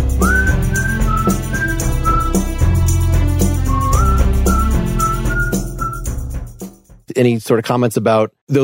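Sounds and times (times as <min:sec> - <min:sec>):
double-tracked whistling melody: 0:00.0 - 0:02.7, 0:03.5 - 0:06.3
full band backing with bass and rhythmic accompaniment: 0:00.0 - 0:06.4
speech: 0:07.2 - 0:08.6.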